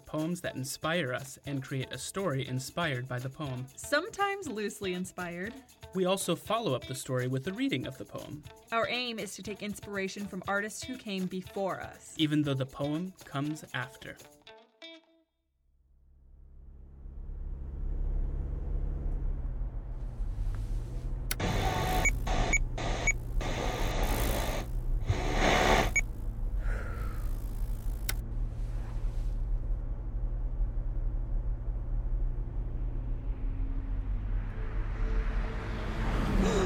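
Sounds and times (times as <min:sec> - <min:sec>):
speech: 0:00.1 - 0:14.4
car driving past: 0:16.1 - 0:36.6.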